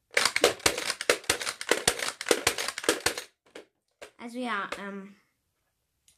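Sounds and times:
toy foam dart blaster rapid firing with mechanical thwacks: 0.2s - 3.3s
speech: 4.2s - 5.2s.

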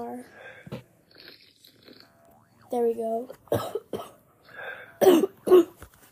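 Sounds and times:
speech: 0.0s - 0.8s, 2.7s - 3.8s
person coughing: 3.5s - 4.2s, 5.0s - 5.8s.

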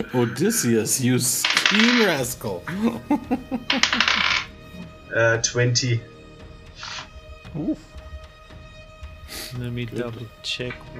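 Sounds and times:
speech: 0.0s - 4.4s, 5.1s - 6.1s, 7.6s - 7.9s, 9.5s - 10.9s
dice rolling on a hard table in a tabletop game: 1.4s - 2.2s, 3.7s - 4.5s, 6.8s - 7.1s
laughter: 2.7s - 4.2s.

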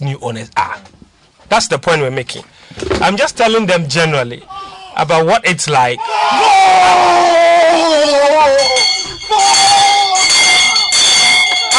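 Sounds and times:
speech: 0.0s - 0.9s, 1.5s - 9.6s
football crowd cheering a goal by a Ghanaian club from Accra: 6.0s - 11.7s.

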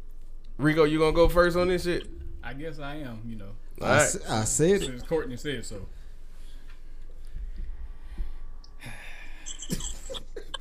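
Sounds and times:
speech: 0.6s - 6.0s
heavy raspy wheezy breathing: 7.2s - 10.5s.

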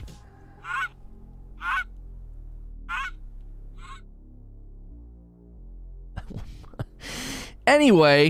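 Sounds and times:
goose honking: 0.6s - 1.0s, 1.6s - 1.9s, 2.9s - 3.2s, 3.8s - 4.0s
speech: 7.7s - 8.2s.

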